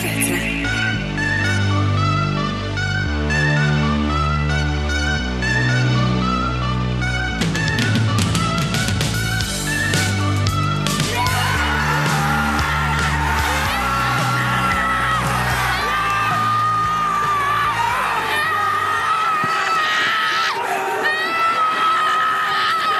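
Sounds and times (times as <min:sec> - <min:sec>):
music: 0:00.0 - 0:20.0
excited shouting voices: 0:11.0 - 0:22.9
family cheering and screaming at a football goal: 0:11.0 - 0:22.9.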